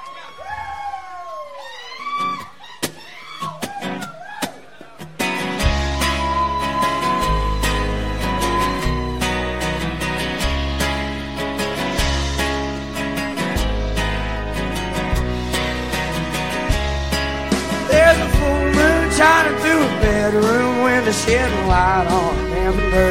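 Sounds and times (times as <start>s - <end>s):
swooping wavering guitar notes: 2.2s - 23.0s
full band with heavy bass, pounding drums and sustained chords: 5.0s - 23.0s.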